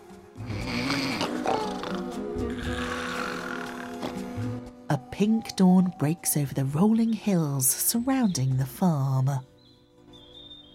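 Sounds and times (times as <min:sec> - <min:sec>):
llamas snoring while sleeping in a farm barn: 0:00.4 - 0:04.5
speech: 0:05.2 - 0:09.5.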